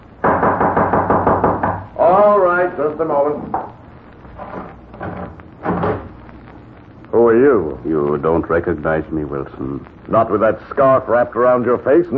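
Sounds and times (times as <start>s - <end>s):
loud knocking on a wooden door: 0.2s - 2.0s
speech: 2.6s - 3.6s, 7.3s - 12.1s.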